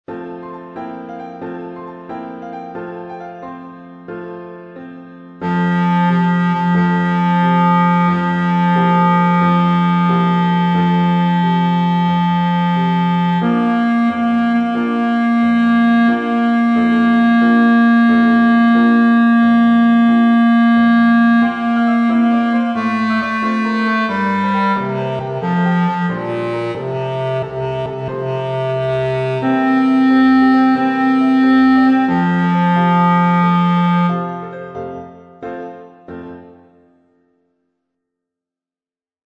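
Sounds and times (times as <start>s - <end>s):
opening bass line: 5.4s - 34.9s.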